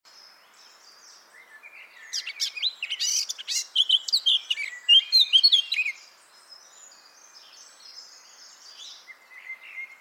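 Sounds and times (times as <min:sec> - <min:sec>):
Eurasian blackcap Sylvia atricapilla warbling song: 0:00.1 - 0:09.9.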